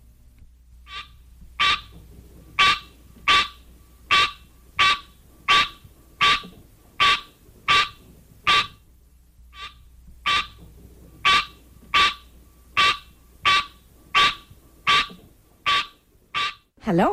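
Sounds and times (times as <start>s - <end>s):
green tree frog Hylocenaria honking calls: 0.8s - 8.8s, 9.5s - 16.8s
speech: 16.8s - 17.1s.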